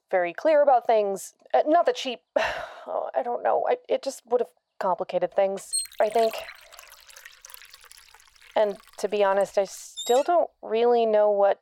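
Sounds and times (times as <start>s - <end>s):
speech: 0.1s - 6.6s, 8.6s - 11.6s
water pouring: 5.6s - 10.3s.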